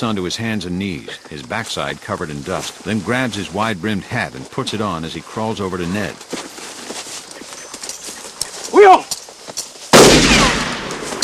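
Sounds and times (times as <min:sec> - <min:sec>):
speech: 0:00.0 - 0:06.4
faint rustling: 0:01.0 - 0:09.9
gunshot fired at riders in open sagebrush country: 0:09.9 - 0:11.2.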